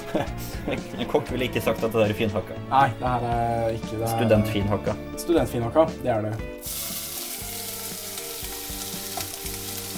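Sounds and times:
speech: 0:00.1 - 0:06.9
whole chopped onion sizzling as it fries in a pan: 0:06.6 - 0:09.9.

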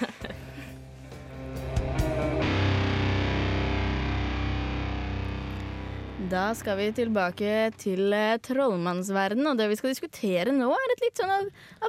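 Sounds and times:
laughter: 0:00.0 - 0:00.8
heavily distorted music track with fuzzy guitars and driving rhythm: 0:00.8 - 0:08.0
speech: 0:06.3 - 0:11.8.

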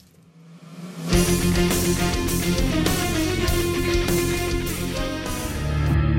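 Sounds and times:
orchestral medley of video game boss battle music: 0:01.1 - 0:06.0.

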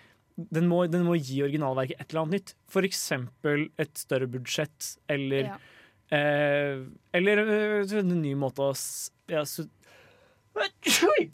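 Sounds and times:
speech: 0:00.4 - 0:10.0, 0:10.6 - 0:11.3
person sneezing: 0:10.6 - 0:11.3.

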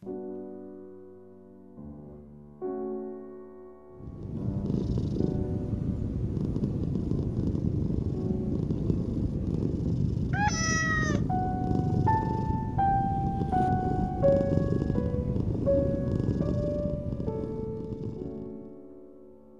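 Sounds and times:
gentle melody of stepped tones: 0:00.0 - 0:19.5
domestic cat purring: 0:04.0 - 0:18.7.

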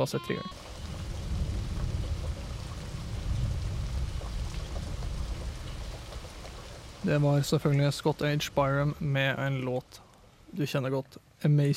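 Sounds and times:
speech: 0:00.0 - 0:00.6, 0:07.0 - 0:11.7
steady continuous rain hissing: 0:00.5 - 0:11.0
deep low rumble: 0:00.6 - 0:10.0.

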